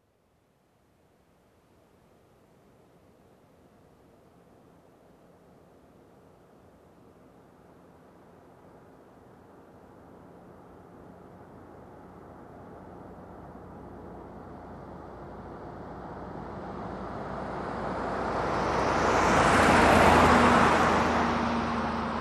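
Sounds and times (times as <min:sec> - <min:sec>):
SUV passing by at medium speed: 0:13.6 - 0:22.2.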